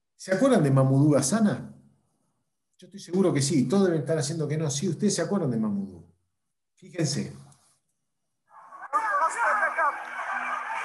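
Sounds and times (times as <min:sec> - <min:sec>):
speech: 0:00.2 - 0:01.7, 0:02.8 - 0:06.0, 0:06.8 - 0:07.4
crowd of people shouting in a played-back video: 0:08.6 - 0:10.8.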